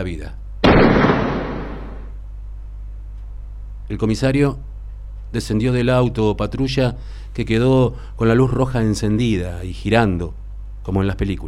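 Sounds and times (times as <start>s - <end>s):
speech: 0.0s - 1.2s, 3.9s - 4.7s, 5.3s - 11.4s
gunshot: 0.6s - 2.1s.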